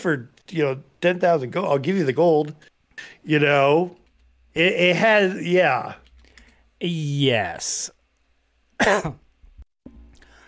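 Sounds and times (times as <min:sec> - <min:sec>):
speech: 0:00.0 - 0:06.0, 0:06.8 - 0:08.0, 0:08.8 - 0:09.2
cough: 0:08.8 - 0:09.2.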